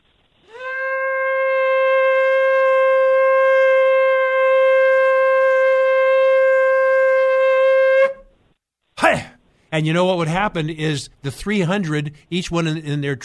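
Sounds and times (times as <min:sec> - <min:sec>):
small shofar blast: 0:00.4 - 0:08.4
speech: 0:09.8 - 0:13.2.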